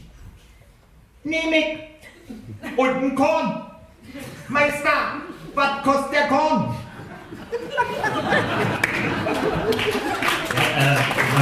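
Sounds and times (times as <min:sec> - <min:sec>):
speech: 0:01.2 - 0:06.8, 0:07.5 - 0:10.0
laughter: 0:02.0 - 0:03.0, 0:06.9 - 0:10.6
audience applause: 0:08.2 - 0:11.4.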